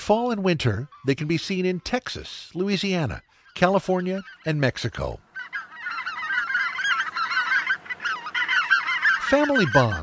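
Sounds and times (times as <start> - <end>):
speech: 0.0 - 5.2, 9.3 - 10.0
greater white-fronted geese yelping and honking: 0.1 - 10.0.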